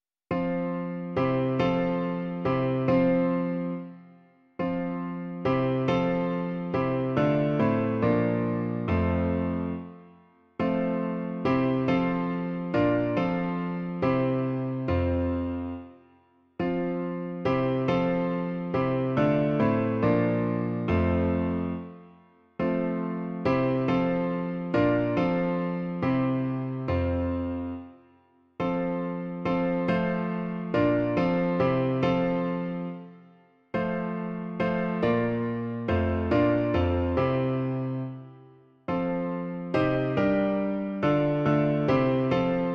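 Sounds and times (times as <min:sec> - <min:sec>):
piano version: 0:00.0 - 0:42.7.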